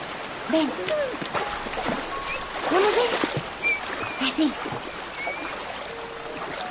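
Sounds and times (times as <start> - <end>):
river water sloshing and splashing as a boy wades in: 0.0 - 6.6
speech: 0.5 - 2.0, 2.7 - 3.4, 4.3 - 4.9.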